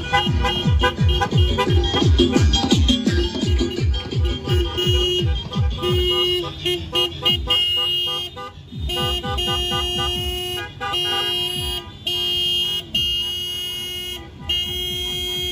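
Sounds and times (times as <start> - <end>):
music at a car caravan parade: 0.0 - 11.9
car horns blaring during a Dia de los Muertos car caravan parade: 0.0 - 15.5
rumble of passing vehicles in a car caravan parade: 0.0 - 15.5.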